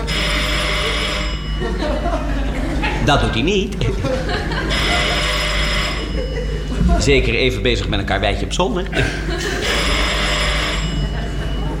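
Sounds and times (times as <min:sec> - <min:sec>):
telephone bell ringing on a call to a house: 0:00.0 - 0:02.4, 0:04.5 - 0:06.8, 0:09.6 - 0:11.7
laughter: 0:00.0 - 0:07.3, 0:08.8 - 0:11.7
speech: 0:03.1 - 0:04.4, 0:06.9 - 0:09.4.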